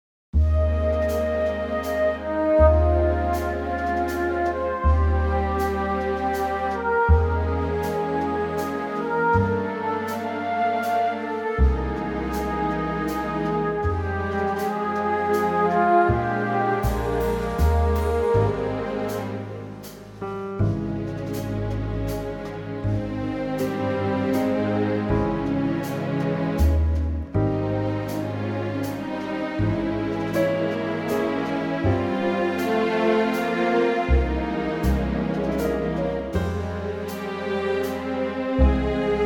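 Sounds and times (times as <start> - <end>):
orchestral music in A flat: 0.4 - 39.2.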